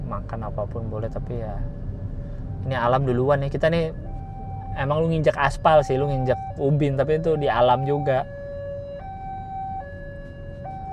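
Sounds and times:
low rumble of road traffic: 0.0s - 10.9s
speech: 0.2s - 1.8s, 2.6s - 4.0s, 4.7s - 8.4s
railway level crossing alarm with two-tone warning: 6.2s - 10.9s.

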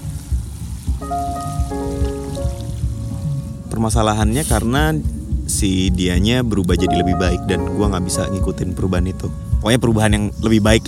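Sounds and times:
ocean waves: 0.0s - 3.8s
soft sustained musical tones: 0.0s - 10.8s
speech: 1.0s - 2.0s, 3.7s - 10.8s.

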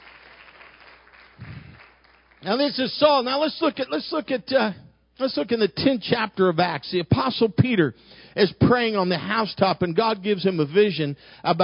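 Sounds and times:
audience clapping hands: 0.0s - 2.4s
speech: 2.4s - 11.6s.

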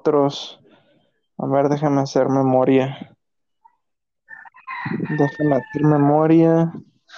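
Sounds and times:
speech: 0.0s - 0.6s, 1.4s - 3.1s, 4.8s - 7.1s
rooster crowing: 4.3s - 6.4s.

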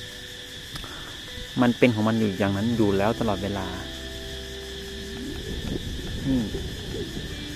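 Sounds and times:
cicadas buzzing outdoors: 0.0s - 7.5s
low rumble of wind: 0.6s - 7.5s
speech: 1.6s - 3.9s, 6.3s - 7.3s.

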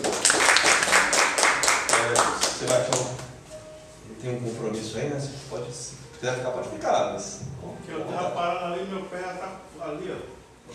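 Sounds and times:
crowd applauding at a prayer service: 0.0s - 3.3s
speech: 4.9s - 10.7s.

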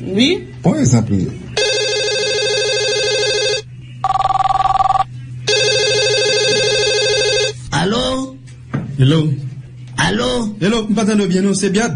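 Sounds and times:
speech: 0.0s - 1.4s, 9.0s - 9.4s, 10.0s - 11.9s
telephone with electronic ring tones ringing: 1.6s - 7.6s.

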